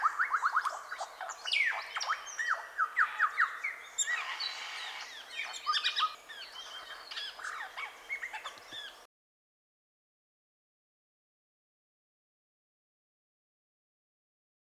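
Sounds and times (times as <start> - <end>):
Superb lyrebird song with chips, whistles, rattles and buzzy sounds: 0.0 - 9.1.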